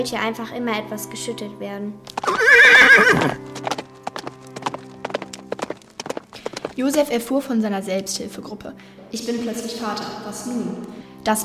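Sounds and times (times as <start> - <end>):
speech: 0.0 - 3.7, 6.8 - 11.4
ridden donkey's hooves clip-clopping at a walk: 2.0 - 7.1
donkey braying: 2.2 - 3.4.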